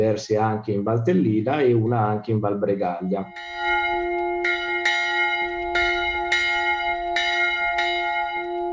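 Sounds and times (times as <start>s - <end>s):
speech: 0.0s - 3.8s
church bells ringing: 3.3s - 8.7s.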